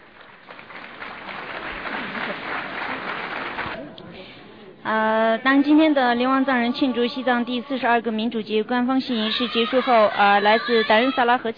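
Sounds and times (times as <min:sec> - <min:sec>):
crowd applauding at an official ceremony during a flag presentation: 0:00.0 - 0:03.8
speech: 0:04.9 - 0:11.5.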